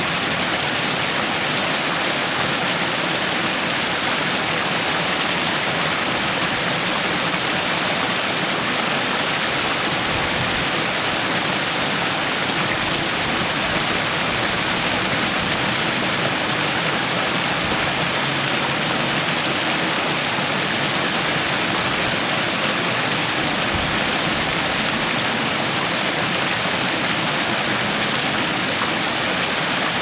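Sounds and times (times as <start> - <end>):
water fountain: 0.0 - 30.0.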